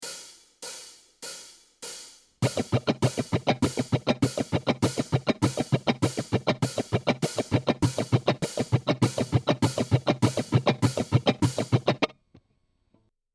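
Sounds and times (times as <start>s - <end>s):
basic guitar strumming: 2.4s - 12.1s.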